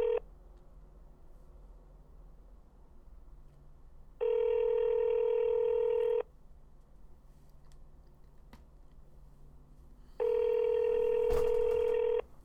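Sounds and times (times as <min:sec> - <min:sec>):
telephone ringback tones during call transfer: 0:00.0 - 0:00.2, 0:04.2 - 0:06.2, 0:10.2 - 0:12.2
low hum: 0:00.0 - 0:12.4.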